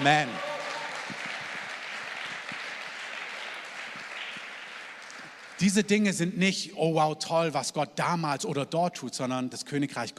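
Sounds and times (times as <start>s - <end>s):
speech: 0.0s - 0.5s, 5.6s - 10.1s
crowd applauding: 0.0s - 6.0s.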